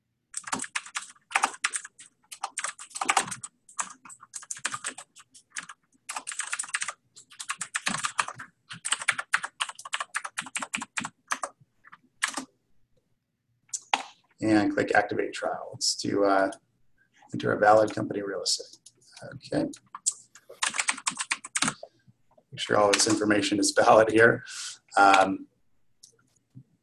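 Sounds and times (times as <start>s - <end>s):
fast typing on a computer keyboard filling in a web form: 0.3s - 12.5s, 19.7s - 21.9s, 22.9s - 23.2s
speech: 14.4s - 16.6s, 17.4s - 19.8s, 22.7s - 25.5s.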